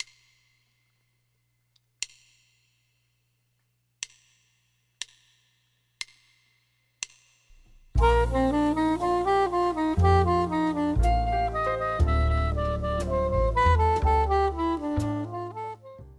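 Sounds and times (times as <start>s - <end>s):
B-flat soprano instrument notes: 8.0s - 16.1s.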